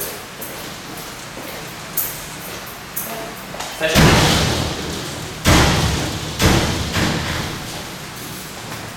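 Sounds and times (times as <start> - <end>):
forceful bangs: 3.8 - 8.5
door slamming: 3.8 - 8.8.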